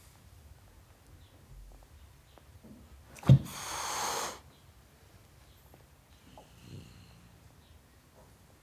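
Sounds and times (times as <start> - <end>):
male tom cat hissing at a dog: 3.2 - 4.4.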